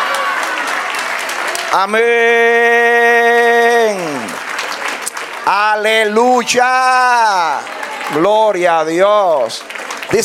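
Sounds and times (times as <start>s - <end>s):
audience applauding at a church service: 0.0s - 10.2s
speech: 1.7s - 3.0s, 5.5s - 10.2s.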